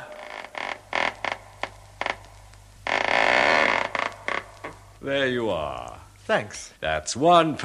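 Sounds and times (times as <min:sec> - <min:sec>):
door hinges creaking open: 0:00.0 - 0:04.8
speech: 0:05.0 - 0:07.6.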